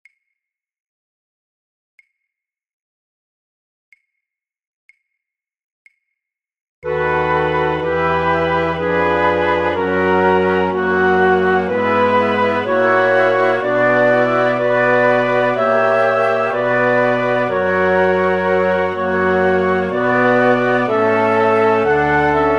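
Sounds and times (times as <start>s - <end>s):
flute orchestra playing all parts: 6.8s - 22.5s.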